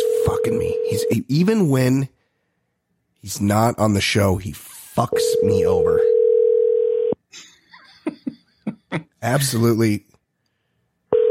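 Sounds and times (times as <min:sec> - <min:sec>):
unanswered phone call steady electronic ringing tone: 0:00.0 - 0:01.2, 0:05.1 - 0:07.2
speech: 0:00.4 - 0:02.2, 0:03.2 - 0:06.1, 0:08.9 - 0:10.1
brief laughter: 0:07.7 - 0:09.6.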